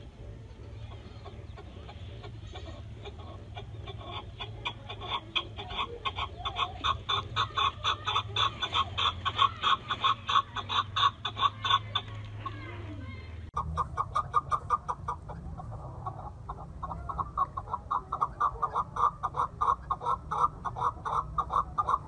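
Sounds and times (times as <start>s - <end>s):
partridge clucking calls: 0.0s - 22.0s.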